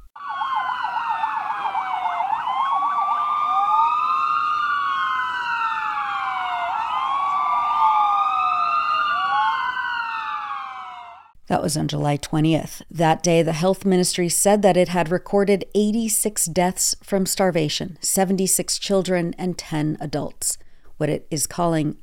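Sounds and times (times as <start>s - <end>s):
several loud wailing alarm sirens: 0.0s - 11.4s
speech: 11.5s - 22.0s.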